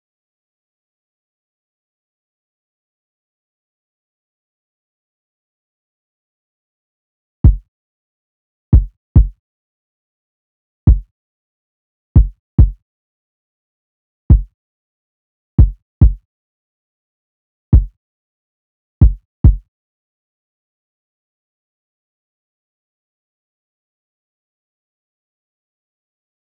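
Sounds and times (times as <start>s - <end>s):
kick drum: 7.4s - 7.7s, 8.8s - 9.4s, 10.9s - 11.1s, 12.2s - 12.8s, 14.3s - 14.5s, 15.6s - 16.2s, 17.8s - 18.0s, 19.0s - 19.7s.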